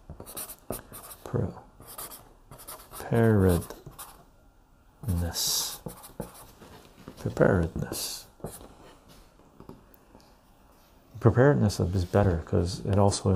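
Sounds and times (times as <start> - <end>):
speech: 0.1 - 1.6, 3.1 - 3.7, 5.3 - 5.6, 7.2 - 8.2, 11.2 - 13.3
pen strokes writing notes by hand: 0.2 - 1.2, 1.8 - 4.2, 5.6 - 6.6.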